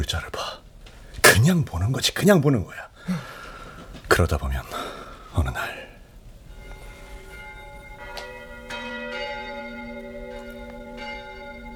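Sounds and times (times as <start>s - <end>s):
speech: 0.0s - 0.4s, 1.4s - 3.3s, 4.1s - 4.8s, 5.4s - 5.8s
cathedral church bells ringing: 6.4s - 11.7s.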